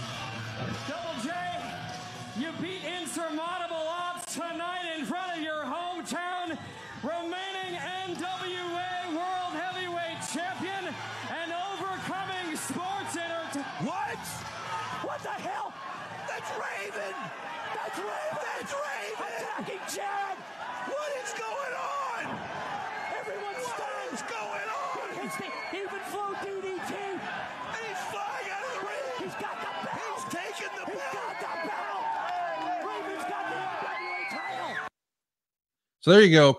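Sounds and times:
large wrestling arena crowd cheering and chanting: 0.0 - 34.9
speech: 2.4 - 5.4, 36.0 - 36.5.

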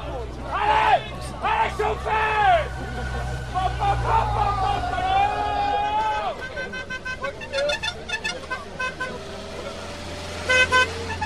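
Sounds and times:
roadside crowd of cycling race fans cheering and yelling: 0.0 - 7.0
passing traffic noise: 0.0 - 11.2
laughter: 1.2 - 9.2
horn toots: 1.6 - 11.2.

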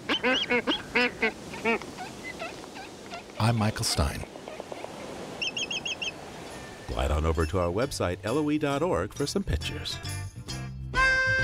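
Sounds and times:
black-footed albatross calls: 0.0 - 6.2
speech: 0.2 - 1.8, 3.5 - 4.3, 6.9 - 10.2.

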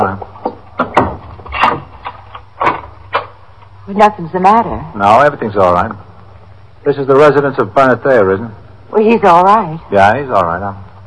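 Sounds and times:
door opening with clunk and creak: 0.4 - 3.3
speech: 3.9 - 6.0, 6.8 - 10.9.

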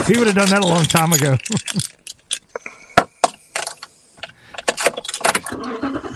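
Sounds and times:
speech: 0.0 - 2.4
keys jingling and clinking: 0.0 - 2.5, 4.6 - 5.5
rattling: 0.0 - 6.1
pickup truck engine starting and rumbling: 4.7 - 6.1.

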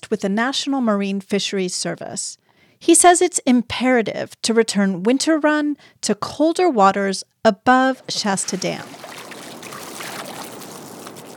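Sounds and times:
speech: 0.1 - 9.0
river flowing over a small clean gravel bed: 8.0 - 11.3.

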